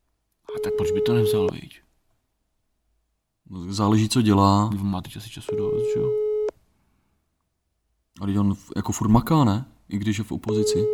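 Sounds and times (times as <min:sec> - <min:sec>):
telephone ringing tone beep: 0:00.5 - 0:01.5, 0:05.5 - 0:06.5, 0:10.6 - 0:10.9
speech: 0:00.6 - 0:01.8, 0:03.5 - 0:06.2, 0:08.2 - 0:10.9.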